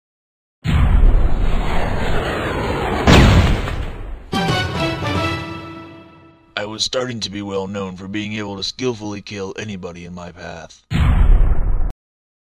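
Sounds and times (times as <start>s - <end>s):
heavy explosions from a science-fiction military shooter video game: 0.6s - 5.7s, 10.9s - 11.9s
speech: 6.6s - 10.9s.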